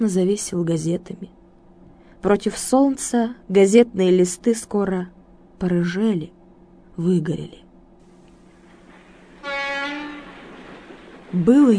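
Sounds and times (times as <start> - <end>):
speech: 0.0 - 1.4, 2.2 - 6.4, 7.0 - 7.6, 11.3 - 11.7
train rumbling on railway tracks: 8.6 - 11.7
train horn blast: 9.2 - 10.8.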